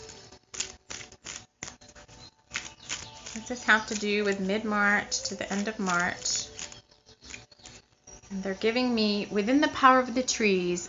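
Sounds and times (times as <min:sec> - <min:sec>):
tarot cards being drawn from a deck, papery rustles and clicks: 0:00.0 - 0:07.8
speech: 0:03.4 - 0:06.4, 0:08.3 - 0:10.8.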